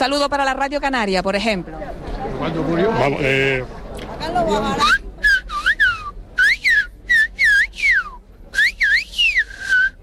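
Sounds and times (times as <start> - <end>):
speech: 0.0 - 5.0
person whistling silbo canario whistled language of the Canary Islands: 4.8 - 10.0.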